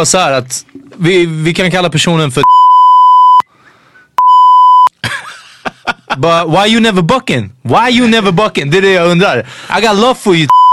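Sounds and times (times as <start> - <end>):
speech: 0.0 - 2.7, 6.2 - 10.6
loud steady censor bleeps over a spoken name: 2.4 - 3.5, 4.2 - 4.9, 10.5 - 10.7
laughter: 5.0 - 6.3.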